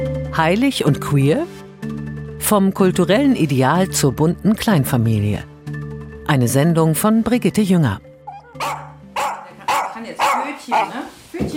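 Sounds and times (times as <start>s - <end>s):
speech: 0.4s - 1.6s, 2.4s - 5.5s, 6.3s - 8.7s, 10.7s - 11.5s
dog barking: 8.3s - 11.1s.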